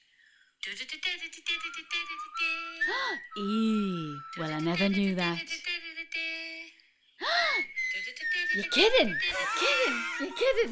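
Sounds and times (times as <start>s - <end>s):
speech: 0.6s - 5.8s, 8.6s - 10.7s
person whistling into a microphone: 1.8s - 4.8s, 7.2s - 10.2s
laughter: 9.3s - 10.7s.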